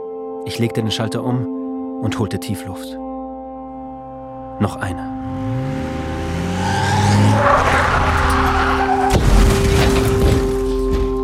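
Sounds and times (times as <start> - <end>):
speech: 0.4 - 3.0, 4.6 - 5.5
SUV engine roaring: 5.1 - 9.1
SUV tires squealing: 5.2 - 10.5
SUV crashing into a restaurant wall with crunching impact: 7.0 - 11.2
loud bang of an SUV tire bursting: 7.0 - 11.2.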